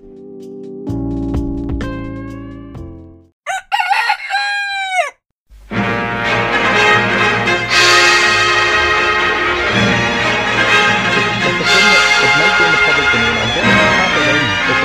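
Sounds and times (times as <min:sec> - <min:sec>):
sustained musical tones and dense music: 0:00.0 - 0:03.3, 0:05.7 - 0:14.8
rooster crowing loudly: 0:03.5 - 0:05.2
laughter: 0:10.4 - 0:14.8.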